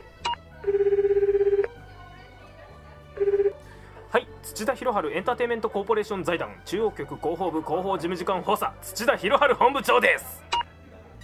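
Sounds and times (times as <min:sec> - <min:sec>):
ringback tone of an outgoing phone call: 0:00.6 - 0:01.8, 0:03.2 - 0:03.6
speech: 0:04.6 - 0:10.4.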